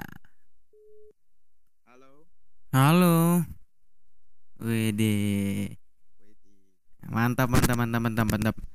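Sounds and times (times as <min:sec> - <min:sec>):
telephone connecting tone beep: 0:00.7 - 0:01.2
speech: 0:02.0 - 0:03.6, 0:04.6 - 0:05.8, 0:07.1 - 0:08.7.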